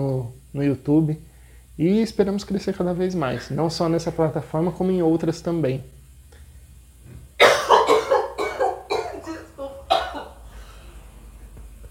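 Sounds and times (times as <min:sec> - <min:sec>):
speech: 0:00.0 - 0:06.0
person coughing in dry hacking bursts: 0:07.4 - 0:10.4.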